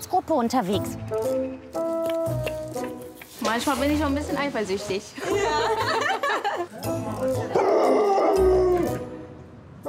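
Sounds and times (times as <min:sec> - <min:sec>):
speech: 0:00.2 - 0:09.1
laughter: 0:05.2 - 0:07.7
dog howling: 0:07.6 - 0:09.1.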